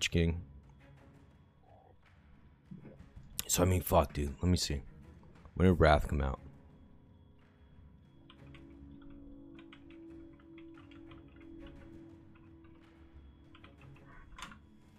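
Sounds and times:
speech: 0.0s - 0.5s, 3.5s - 4.9s, 5.6s - 6.4s
steady low hum: 0.0s - 14.9s
soft keystrokes on a computer keyboard: 8.3s - 14.6s.

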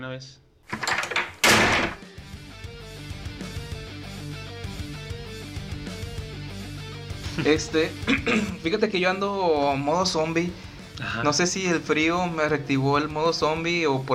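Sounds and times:
speech: 0.0s - 0.9s, 7.4s - 14.1s
door slamming shut: 0.7s - 2.1s
music: 0.7s - 14.1s.

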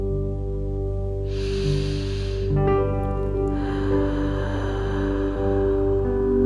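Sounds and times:
steady music: 0.0s - 6.4s
deep slow inhaled breath during a guided relaxation exercise: 1.3s - 6.4s.

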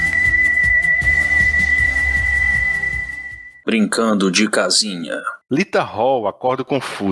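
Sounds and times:
shrill whistle blown and held: 0.0s - 3.7s
speech: 3.7s - 7.0s.

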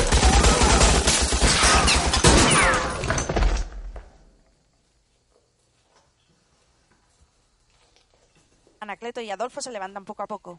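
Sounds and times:
rapid gunfire in a shootout: 0.0s - 2.9s
speech: 9.0s - 10.5s.

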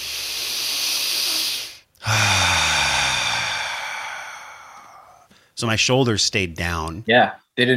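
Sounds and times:
full circular breath drawn like a bellow: 0.0s - 5.6s
speech: 5.6s - 7.7s.

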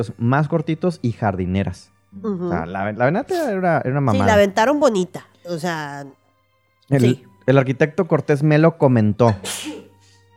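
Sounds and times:
speech: 0.0s - 6.2s, 6.9s - 9.7s
person sneezing: 9.3s - 10.0s.

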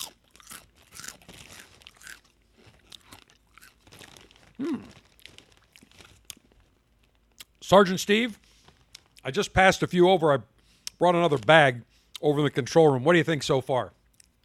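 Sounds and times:
crunchy cheese-flavoured snack being chewed: 0.0s - 7.6s, 8.6s - 9.2s
speech: 4.6s - 5.0s, 7.7s - 8.4s, 9.2s - 14.0s.

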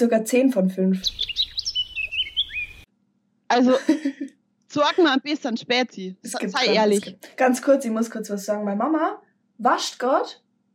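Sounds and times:
speech: 0.0s - 1.4s, 3.5s - 10.4s
bright high bird chirps and tweets: 1.0s - 2.9s
laughter: 3.6s - 5.2s.

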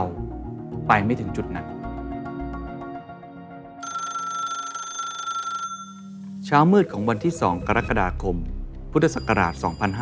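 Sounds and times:
low tense music: 0.0s - 3.8s, 5.7s - 10.0s
speech: 0.9s - 1.8s, 6.5s - 10.0s
telephone ringing with bright electronic tone: 3.8s - 6.4s.

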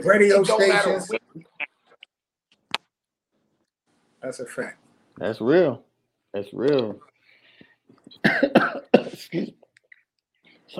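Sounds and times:
speech: 0.0s - 1.2s, 4.2s - 7.1s, 8.1s - 9.6s
coughing fit while choking: 8.1s - 9.6s.

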